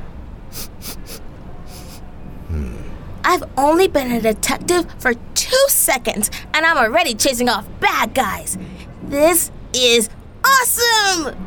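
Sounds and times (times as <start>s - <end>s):
person sniffing: 0.5s - 3.0s
speech: 3.3s - 11.4s.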